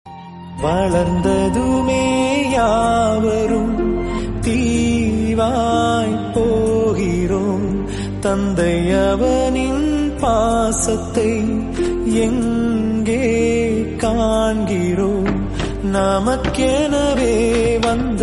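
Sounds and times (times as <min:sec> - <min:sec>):
emotional Tamil song about a father: 0:00.0 - 0:18.2.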